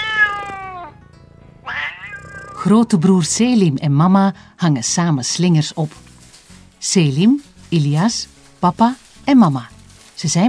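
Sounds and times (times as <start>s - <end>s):
cat meowing: 0.0s - 3.4s
speech: 2.6s - 6.1s, 6.8s - 10.4s.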